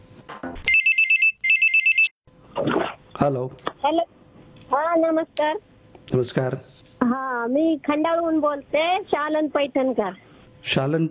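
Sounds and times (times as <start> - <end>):
telephone ringtone for an incoming call with warbling electronic trill: 0.7 - 2.1
speech: 2.6 - 4.1, 4.8 - 11.1.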